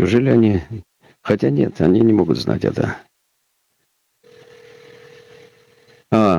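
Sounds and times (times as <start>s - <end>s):
speech: 0.0s - 3.1s, 6.1s - 6.3s
steady telephone line tone: 4.2s - 6.1s.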